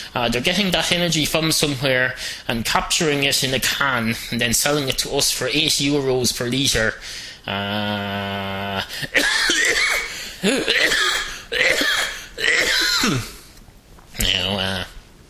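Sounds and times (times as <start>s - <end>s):
speech: 0.1s - 13.3s, 14.2s - 14.9s
throaty vocal sounds with droning voiced tone: 7.4s - 13.5s, 14.2s - 15.0s
person coughing: 8.8s - 13.5s.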